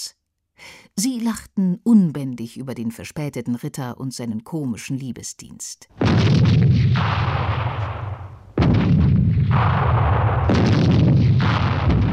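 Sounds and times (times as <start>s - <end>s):
speech: 1.0s - 7.6s
gunfire: 6.0s - 12.1s
heavy cannon booms: 6.0s - 12.1s.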